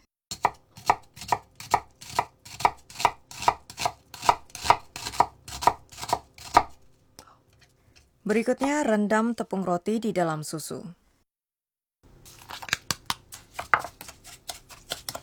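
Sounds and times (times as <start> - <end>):
knife chopping an onion finely on a board: 0.3 - 6.8, 12.4 - 15.2
speech: 8.3 - 11.0.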